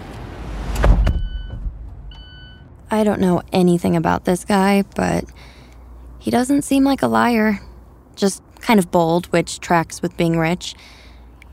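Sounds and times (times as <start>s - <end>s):
short whooshing clunk of a rental car door or power window: 0.0s - 2.8s
low rumble: 0.0s - 4.0s
speech: 2.9s - 5.5s, 6.2s - 11.0s.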